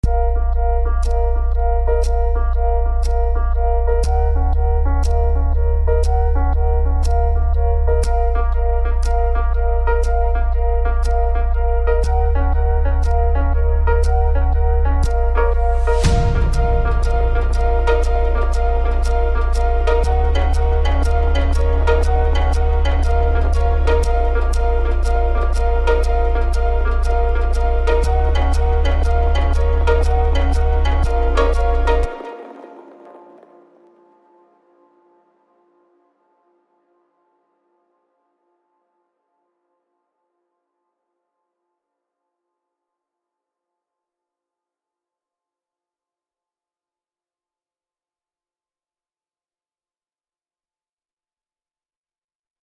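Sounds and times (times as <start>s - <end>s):
cinematic electronic music: 0.0s - 35.3s.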